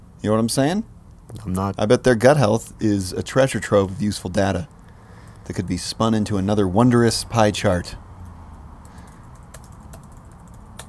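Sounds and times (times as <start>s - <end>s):
speech: 0.2s - 4.8s, 5.4s - 8.0s
computer keyboard typing with crisp key clicks: 1.3s - 1.7s, 8.2s - 10.8s.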